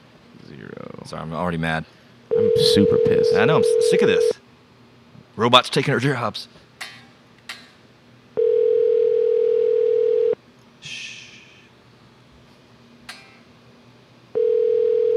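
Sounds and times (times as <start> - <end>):
speech: 0.5 - 4.4, 5.4 - 6.6
ringing tone on a phone line: 2.3 - 4.4, 8.4 - 10.4, 14.4 - 15.1.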